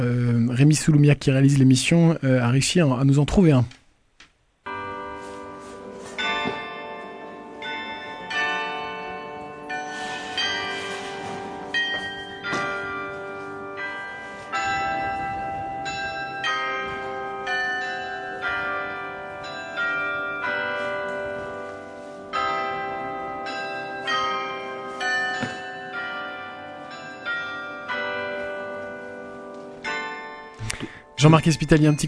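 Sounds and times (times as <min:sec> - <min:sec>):
speech: 0:00.0 - 0:03.8, 0:31.4 - 0:32.0
church bell carillon playing a Christmas carol: 0:04.7 - 0:32.0.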